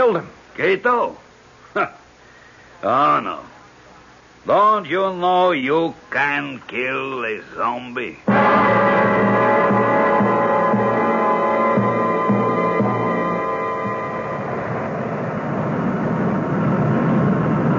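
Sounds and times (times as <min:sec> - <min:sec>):
speech: 0:00.0 - 0:01.2, 0:01.8 - 0:02.0, 0:02.8 - 0:03.5, 0:04.4 - 0:08.9
airplane coming in to land: 0:08.3 - 0:17.7.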